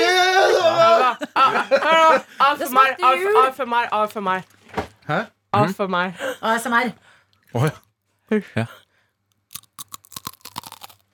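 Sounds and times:
laughter: 0:00.5 - 0:02.6
speech: 0:01.7 - 0:08.8
crunchy cookie being chewed: 0:09.4 - 0:11.1.

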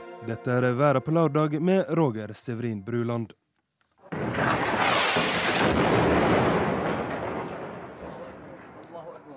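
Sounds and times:
speech: 0:00.3 - 0:03.4
artillery fire blast and rumble: 0:04.1 - 0:08.9.

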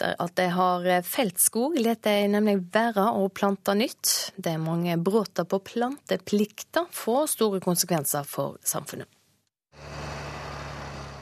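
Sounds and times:
speech: 0:00.0 - 0:09.2
tractor engine rumbling while hauling timber loads: 0:09.7 - 0:11.2.

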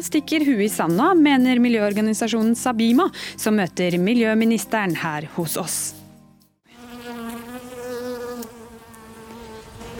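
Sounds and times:
speech: 0:00.0 - 0:06.0
bee buzzing: 0:06.6 - 0:09.9.

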